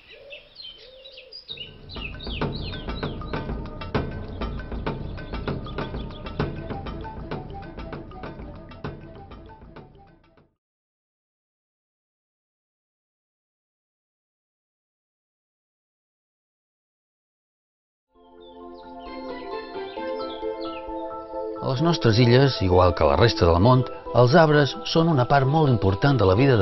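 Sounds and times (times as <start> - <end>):
great tit singing: 0.0 - 7.0, 18.2 - 26.6
speech: 18.3 - 19.6, 21.7 - 26.6.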